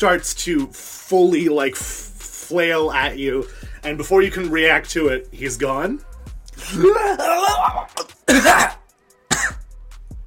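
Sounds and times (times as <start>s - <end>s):
speech: 0.0s - 8.8s
harsh rasping coughing: 6.6s - 9.7s.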